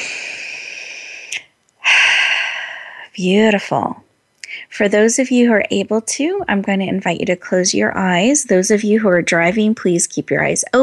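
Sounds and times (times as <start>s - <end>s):
loud deep inhalation: 0.0s - 3.1s
slow breathing during a guided relaxation: 0.0s - 3.1s
speech: 3.2s - 4.1s, 4.8s - 10.8s.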